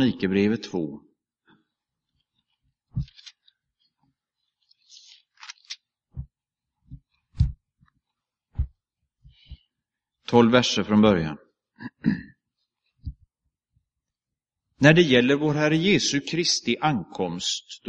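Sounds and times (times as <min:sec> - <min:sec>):
speech: 0:00.0 - 0:01.1, 0:10.3 - 0:11.4, 0:12.0 - 0:12.3, 0:14.8 - 0:17.8
pages of a book being leafed through: 0:02.2 - 0:06.3.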